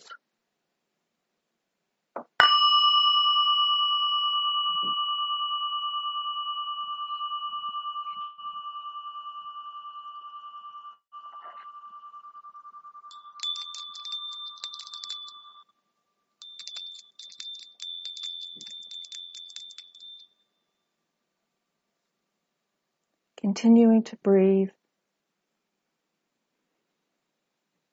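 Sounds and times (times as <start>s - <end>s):
higher shimmering ring: 2.4s - 15.6s
meditation bell ringing: 2.4s - 15.7s, 16.4s - 20.5s
speech: 23.5s - 24.8s.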